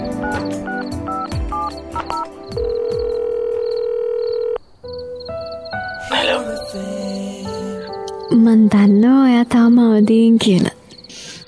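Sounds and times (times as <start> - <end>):
landline telephone dial tone: 0.2 - 4.6
speech: 6.1 - 7.3, 8.4 - 10.8.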